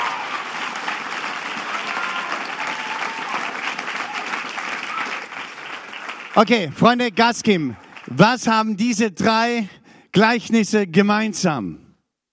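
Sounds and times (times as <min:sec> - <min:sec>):
audience applauding: 0:00.0 - 0:09.6
speech: 0:06.4 - 0:11.8.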